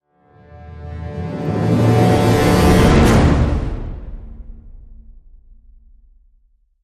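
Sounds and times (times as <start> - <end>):
orchestral brass hit in D: 0.4 - 5.2.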